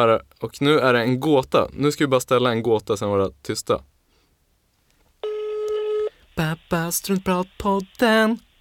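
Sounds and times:
speech: 0.0 - 3.9, 6.4 - 8.5
telephone ringback tone while calling someone: 5.2 - 6.2.

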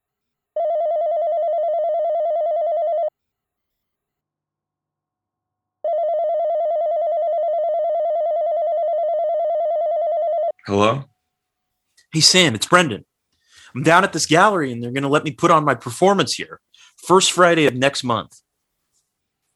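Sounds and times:
wall telephone ringing with electronic trill: 0.6 - 3.1, 5.8 - 10.6
speech: 10.7 - 11.1, 12.1 - 13.1, 13.7 - 18.4.

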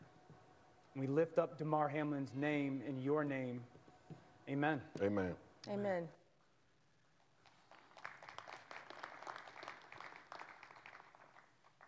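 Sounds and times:
speech: 1.0 - 3.8, 4.5 - 6.2
audience clapping after a prayer: 7.3 - 11.8.

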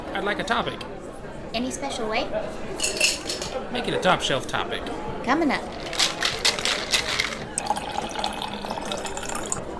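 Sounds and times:
speech: 0.1 - 6.0
beer pouring into a glass: 7.0 - 9.6.

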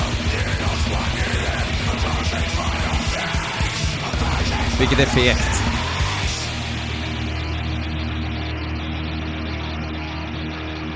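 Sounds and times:
distorted guitars: 0.0 - 10.9
loud dense heavy metal song: 0.0 - 10.9
harsh screamed vocal: 3.2 - 6.4
pounding low drums: 4.0 - 8.2
speech: 4.8 - 5.7.

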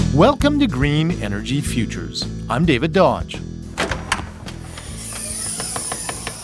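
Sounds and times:
speech: 0.2 - 3.5
roof window of a net zero show home opening with sharp clunks: 3.7 - 6.4.

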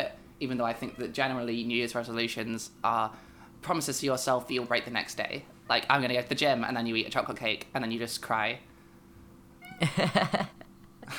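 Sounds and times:
speech: 0.4 - 8.7, 9.8 - 11.1
cat meowing: 0.6 - 1.4, 9.6 - 9.9.

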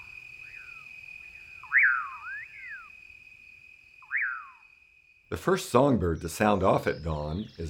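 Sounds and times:
common pauraque calls, slurred rising and falling whistles: 0.0 - 3.0, 4.0 - 4.6
constant insect hum: 0.0 - 7.6
speech: 5.3 - 7.6.

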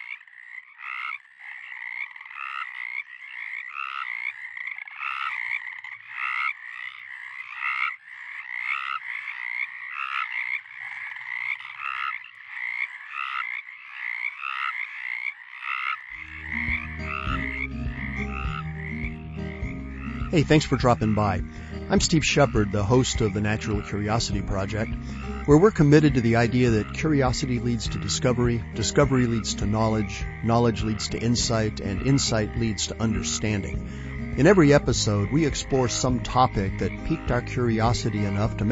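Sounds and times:
Pacific chorus frogs calling in a dense chorus: 0.0 - 38.7
low music: 16.3 - 38.7
speech: 20.4 - 38.7.

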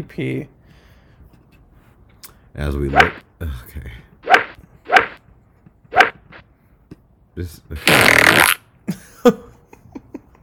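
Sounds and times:
speech: 0.0 - 0.6, 2.6 - 4.1, 7.4 - 9.4
fart sound effect: 5.9 - 6.4, 7.8 - 8.6.

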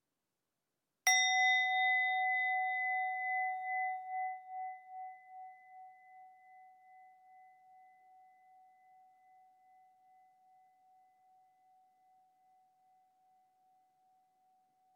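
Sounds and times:
meditation bell struck and ringing: 1.1 - 10.4.

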